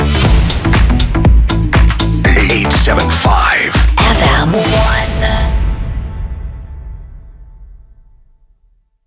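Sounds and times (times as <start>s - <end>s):
jingle music: 0.1s - 6.6s.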